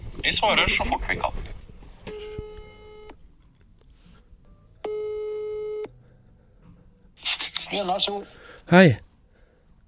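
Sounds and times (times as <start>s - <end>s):
speech: 0.2s - 1.5s, 7.8s - 9.0s
long steady electronic telephone ringback tones: 2.1s - 3.2s, 4.8s - 5.9s.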